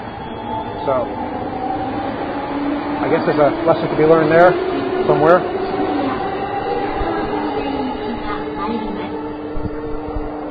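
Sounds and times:
sustained mechanical hum: 0.0s - 10.4s
train rumbling in a station: 0.0s - 10.4s
speech: 0.8s - 1.2s, 3.0s - 5.6s
faint voices murmuring: 3.0s - 10.4s.

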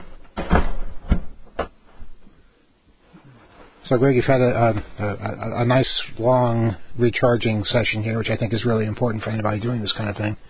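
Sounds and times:
wooden door pulled shut: 0.3s - 1.7s
speech: 3.9s - 10.4s.

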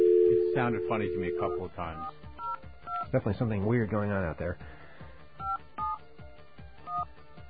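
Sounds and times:
telephone keypad two-tone beeps dialing a phone number: 0.0s - 2.6s
speech: 0.5s - 2.2s, 3.1s - 4.8s.

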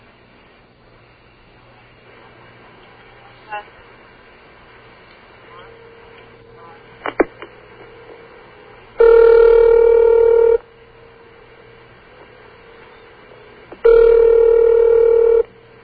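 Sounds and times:
telephone line ringback tone: 9.0s - 10.6s, 13.8s - 15.5s.

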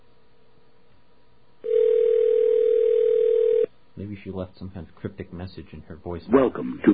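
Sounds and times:
steady electronic telephone tone of a call ringing out: 1.6s - 3.7s
speech: 4.0s - 6.9s.

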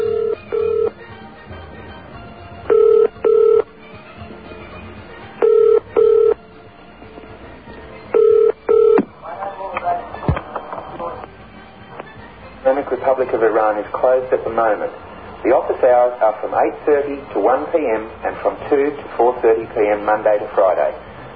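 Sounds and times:
phone ringing on a call to an embassy in Canberra, Australia: 0.0s - 1.0s, 2.7s - 3.7s, 5.4s - 6.4s, 8.1s - 9.1s
speech: 13.1s - 21.1s.

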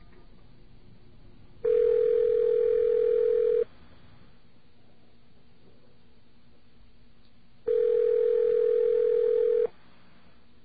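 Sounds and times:
faint hiss: 0.0s - 10.6s
telephone dial tone: 1.7s - 3.6s, 7.7s - 9.7s.

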